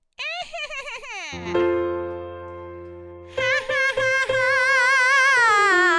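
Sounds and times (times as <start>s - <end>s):
breathy witch cackle: 0.2s - 1.6s, 3.4s - 5.8s.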